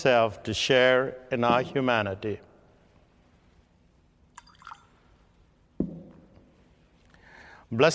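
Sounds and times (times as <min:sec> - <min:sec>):
speech: 0:00.0 - 0:02.5, 0:07.7 - 0:07.9
water dripping into wine in a chalice: 0:04.3 - 0:05.1.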